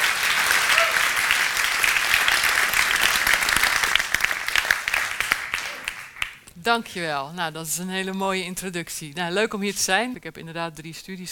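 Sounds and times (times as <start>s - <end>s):
crowd applauding to welcome a speaker: 0.0s - 6.4s
speech: 6.6s - 11.3s.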